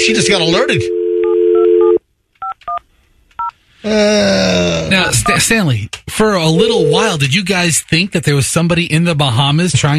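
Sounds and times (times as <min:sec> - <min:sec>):
steady telephone tone: 0:00.0 - 0:02.0
speech: 0:00.1 - 0:01.0, 0:03.8 - 0:09.9.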